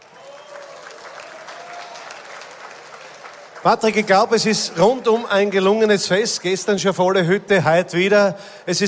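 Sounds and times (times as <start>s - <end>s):
sustained applause from a sizable crowd: 0.0s - 5.2s
speech: 3.6s - 8.8s.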